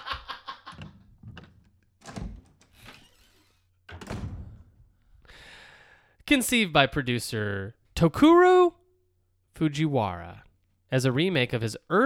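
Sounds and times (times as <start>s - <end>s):
heavy wooden door thunks: 0.7s - 3.3s, 3.9s - 5.2s
door latch rattling: 0.7s - 5.0s
speech: 6.3s - 8.7s, 9.6s - 12.0s.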